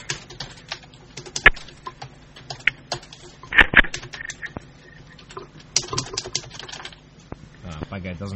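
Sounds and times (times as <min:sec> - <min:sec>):
typing on a keyboard: 0:00.0 - 0:03.3, 0:05.2 - 0:07.0
speech: 0:08.0 - 0:08.3.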